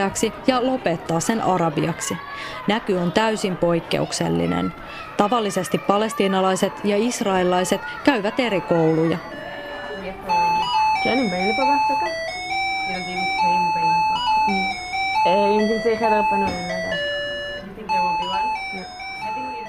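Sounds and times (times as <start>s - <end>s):
speech: 0.0s - 9.5s, 11.0s - 12.3s, 12.9s - 14.6s, 15.2s - 17.2s
young voices talking and calling out: 0.0s - 19.6s
electronic chime melody of a school bell signalling recess: 8.0s - 19.6s.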